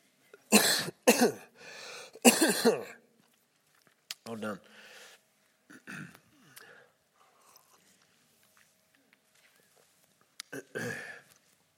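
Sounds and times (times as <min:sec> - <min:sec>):
person coughing harshly: 0:00.5 - 0:01.5, 0:02.2 - 0:03.0, 0:05.7 - 0:06.2, 0:10.6 - 0:11.2
speech: 0:01.1 - 0:01.5, 0:02.2 - 0:03.0, 0:04.3 - 0:04.7, 0:10.5 - 0:11.1.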